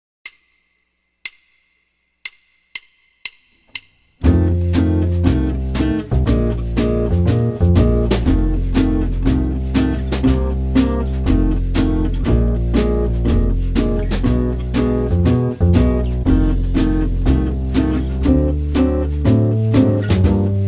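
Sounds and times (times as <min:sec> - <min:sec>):
jazz blues guitar in F major: 0:04.2 - 0:20.6.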